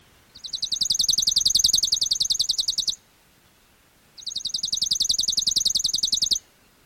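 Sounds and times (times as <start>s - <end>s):
chipping sparrow dry rapid trills: 0.3s - 3.0s, 4.2s - 6.8s.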